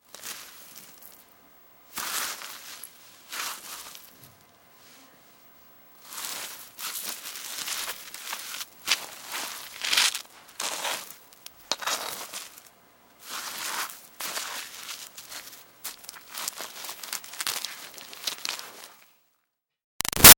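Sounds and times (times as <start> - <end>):
gritty dirt smear foley: 1.9 - 4.1, 6.0 - 19.0.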